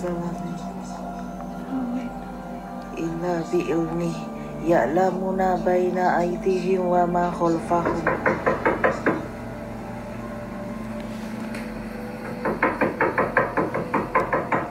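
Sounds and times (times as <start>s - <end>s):
low droning noise: 0.0s - 14.6s
speech: 3.2s - 8.4s
rapid sharp knocking on a door: 7.8s - 9.3s, 12.2s - 14.6s.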